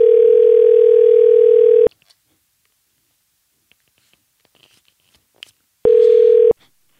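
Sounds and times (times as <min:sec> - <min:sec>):
loud telephone ringing tone: 0:00.0 - 0:01.9, 0:05.8 - 0:06.6.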